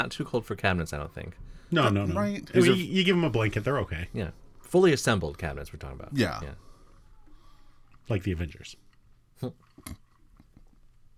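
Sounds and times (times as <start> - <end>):
speech: 0.0 - 6.6, 8.1 - 8.8, 9.4 - 10.0
person chewing and swallowing: 8.9 - 11.1.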